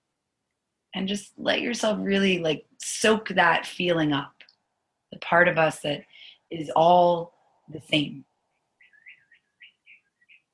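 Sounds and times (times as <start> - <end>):
speech: 1.0 - 4.4, 5.1 - 8.3
bird chirping: 8.6 - 10.5.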